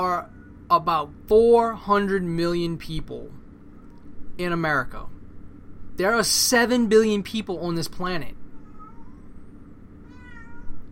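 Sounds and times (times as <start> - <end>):
speech: 0.0 - 3.4, 4.4 - 5.2, 6.0 - 8.4
low rumble: 0.0 - 10.9
cat meowing in a drawn-out wavering call: 8.5 - 9.4, 10.0 - 10.9.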